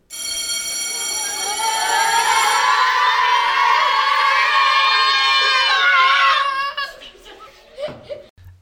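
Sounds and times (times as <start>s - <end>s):
loud electric school bell ringing for recess: 0.0s - 4.2s
crowd of children shouting and cheering: 0.7s - 7.1s
laughter: 6.4s - 8.3s.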